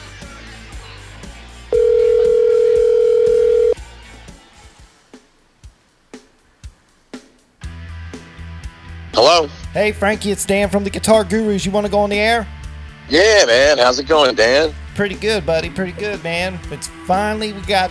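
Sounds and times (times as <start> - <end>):
telephone dial tone: 1.7 - 3.8
speech: 9.4 - 17.8.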